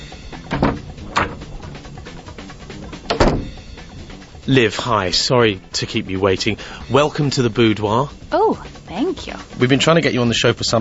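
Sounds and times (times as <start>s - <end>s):
door handle clunk: 0.4s - 1.5s, 2.9s - 3.6s
door thump: 0.4s - 1.6s, 3.0s - 3.6s
soft knock of a door as it swings: 0.4s - 1.8s, 2.9s - 3.6s
speech: 4.5s - 10.7s.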